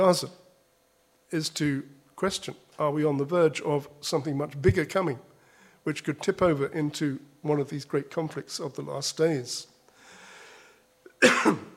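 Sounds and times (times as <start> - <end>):
speech: 0.0 - 0.4, 1.3 - 9.7, 11.2 - 11.7
man coughing: 11.1 - 11.7.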